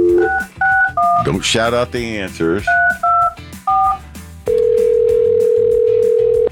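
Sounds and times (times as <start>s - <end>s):
loud steady telephone tone as a call is placed: 0.0s - 1.2s, 3.0s - 6.5s
short touch-tone beeps: 0.0s - 1.3s, 2.7s - 4.6s
speech: 1.2s - 3.0s.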